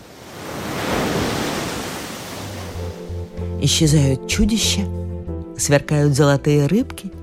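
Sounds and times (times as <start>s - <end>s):
stormy lake waves crashing: 0.0s - 3.4s
speech: 3.6s - 5.0s, 5.6s - 7.2s.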